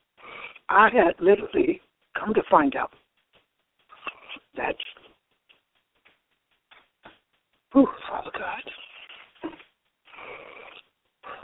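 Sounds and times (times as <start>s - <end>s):
labored breathing from a person struggling to get air: 0.2s - 0.7s, 3.9s - 4.5s, 7.8s - 11.4s
speech: 0.7s - 3.0s, 4.6s - 4.9s, 7.8s - 8.8s.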